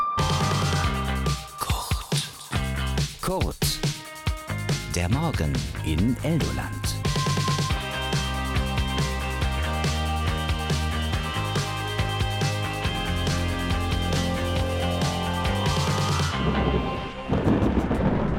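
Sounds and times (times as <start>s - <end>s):
rhythmic musical bed: 0.2s - 16.7s
speech: 5.0s - 6.9s
thunder rumbling: 16.3s - 18.3s.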